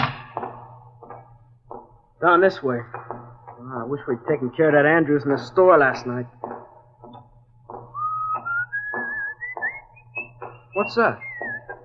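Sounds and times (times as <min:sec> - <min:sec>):
soft rhythmic thumps: 0:00.0 - 0:11.8
speech: 0:02.2 - 0:03.0, 0:03.7 - 0:06.4, 0:10.8 - 0:11.3
rising whistled tone: 0:07.9 - 0:11.8.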